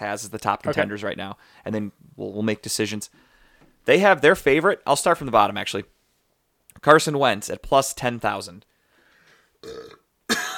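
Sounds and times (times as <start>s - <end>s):
speech: 0.0s - 5.9s, 6.8s - 8.7s, 9.6s - 10.5s
loud guttural burps: 9.6s - 10.5s.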